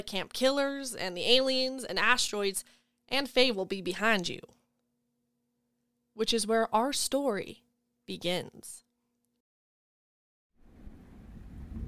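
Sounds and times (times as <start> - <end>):
speech: 0.0 - 4.6, 6.2 - 8.8
deep thunder rumbling: 10.6 - 11.8.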